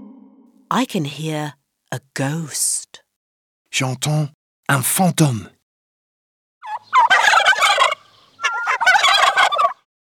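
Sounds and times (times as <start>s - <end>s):
speech: 0.7s - 2.9s, 3.7s - 5.6s
turkey gobbling: 6.6s - 9.9s.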